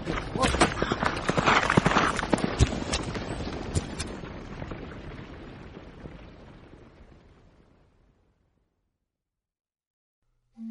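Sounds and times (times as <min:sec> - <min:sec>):
horses galloping hooves: 0:00.0 - 0:07.8.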